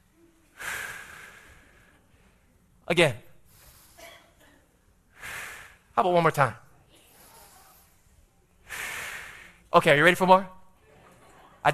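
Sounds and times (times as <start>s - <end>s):
deep breath drawn in: 0.5s - 2.5s, 3.4s - 4.4s, 5.1s - 6.0s, 7.0s - 9.7s
speech: 2.9s - 3.2s, 6.0s - 6.6s, 9.7s - 10.6s.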